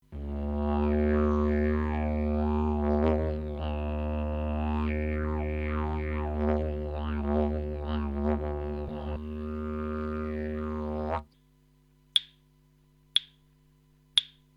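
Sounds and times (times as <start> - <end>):
didgeridoo solo: 0.1 - 11.3
clap sticks: 12.2 - 12.4, 13.2 - 13.4, 14.2 - 14.5.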